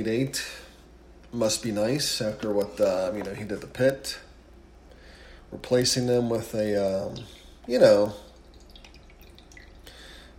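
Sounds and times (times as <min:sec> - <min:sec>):
speech: 0:00.0 - 0:00.6, 0:01.3 - 0:04.3, 0:05.5 - 0:08.3
coffee being poured into a cup: 0:06.9 - 0:10.0.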